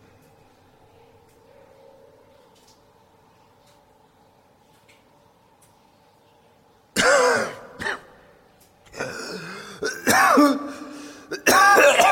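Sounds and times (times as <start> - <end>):
man coughing himself awake: 7.0 - 8.2, 9.0 - 12.1
man clearing his throat: 9.0 - 12.1.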